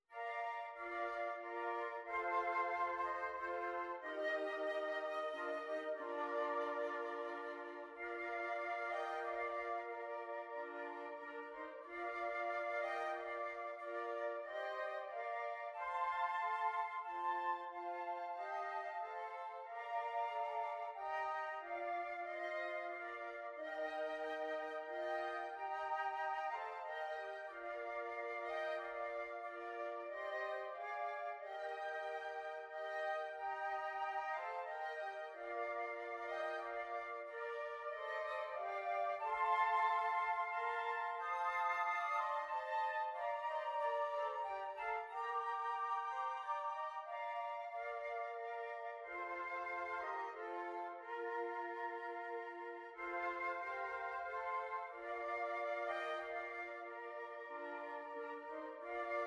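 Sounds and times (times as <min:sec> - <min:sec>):
flute quartet playing: 0:00.1 - 0:59.2.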